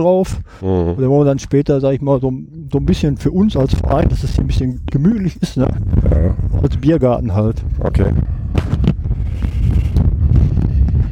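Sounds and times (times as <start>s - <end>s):
speech: 0.0s - 8.7s
strong wind buffeting the microphone: 2.6s - 11.1s.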